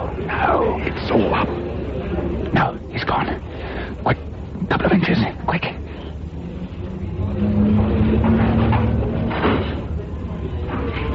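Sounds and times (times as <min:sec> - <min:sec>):
dull hum: 0:00.0 - 0:11.1
speech: 0:00.2 - 0:01.6, 0:02.6 - 0:05.8
door sliding or swinging with a low steady rumble: 0:06.4 - 0:11.1.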